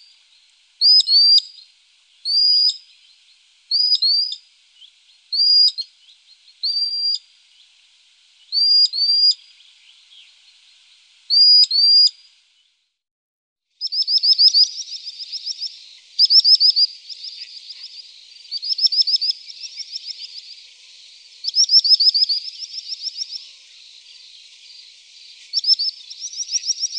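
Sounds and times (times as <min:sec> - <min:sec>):
common sandpiper piping calls: 0:00.8 - 0:01.6, 0:02.3 - 0:02.8, 0:03.7 - 0:04.4, 0:05.3 - 0:05.8, 0:06.7 - 0:07.2, 0:08.5 - 0:09.4, 0:13.8 - 0:20.7, 0:21.4 - 0:24.2, 0:25.4 - 0:26.9.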